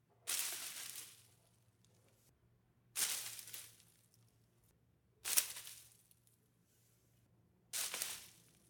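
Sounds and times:
rock landing in leaves: 0.3 - 1.3, 3.0 - 3.9, 7.8 - 8.4.

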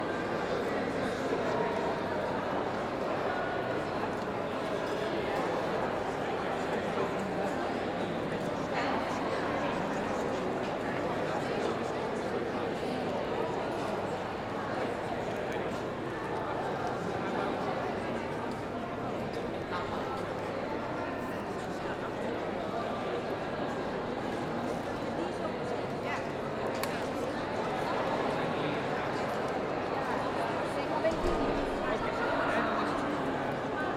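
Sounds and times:
people ambience in a large hall: 0.0 - 33.9.

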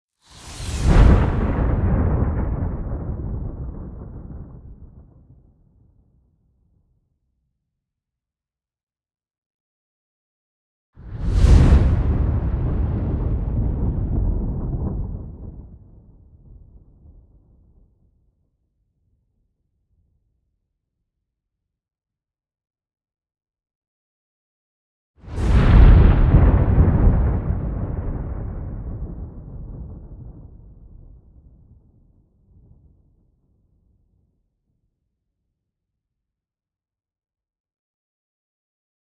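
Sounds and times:
thunder blasts with lightning: 0.4 - 5.1, 11.1 - 16.8, 25.3 - 31.2.

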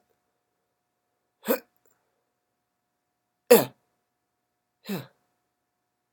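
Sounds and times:
grunts: 1.4 - 1.7, 4.8 - 5.2.

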